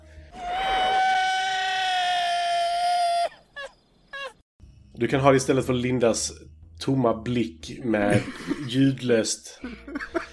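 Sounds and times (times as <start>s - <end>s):
long loud sustained shrill scream: 0.3s - 4.4s
short sharp shrieks with a rising warbling quality: 0.4s - 3.4s
speech: 5.0s - 10.3s
laughter: 8.1s - 8.7s, 9.6s - 10.3s.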